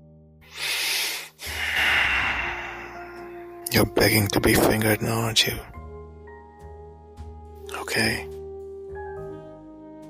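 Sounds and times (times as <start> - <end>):
heavy breathing: 0.4 - 3.5
speech: 3.7 - 5.8, 7.9 - 8.3.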